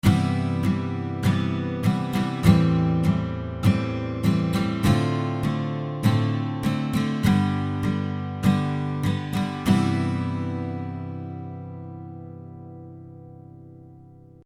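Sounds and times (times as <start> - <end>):
guitar rhythm: 0.0 - 14.4.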